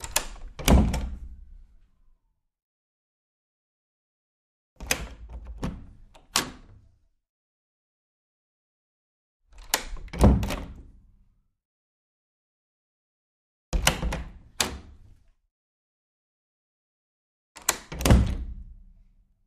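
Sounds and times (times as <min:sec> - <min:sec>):
wooden door opening and closing: 0:00.0 - 0:01.4, 0:04.8 - 0:06.8, 0:09.5 - 0:10.9, 0:13.8 - 0:15.2, 0:17.6 - 0:18.8.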